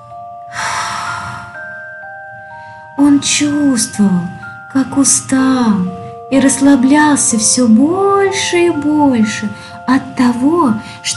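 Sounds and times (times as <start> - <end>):
soft sustained musical tone: 0.0 - 11.1
slow deep breathing: 0.5 - 3.0
speech: 3.0 - 11.1.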